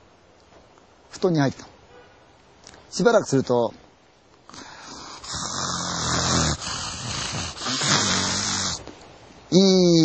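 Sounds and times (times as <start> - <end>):
speech: 1.2 - 1.7, 2.9 - 3.8
man's voice mimicking snoring: 4.6 - 8.8.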